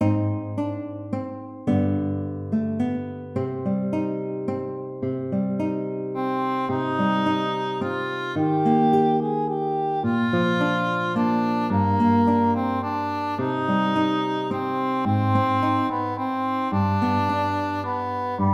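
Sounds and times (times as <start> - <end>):
guitar melody: 0.0 - 18.5
English horn melody: 6.2 - 18.5.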